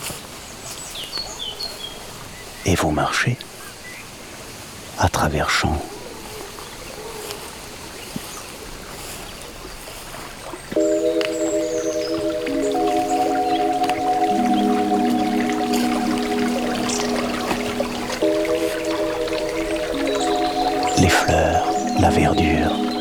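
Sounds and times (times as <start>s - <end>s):
speech: 2.6s - 3.5s, 5.0s - 5.9s
gentle water lapping and dripping: 6.0s - 22.9s
sustained musical tones: 10.8s - 22.9s.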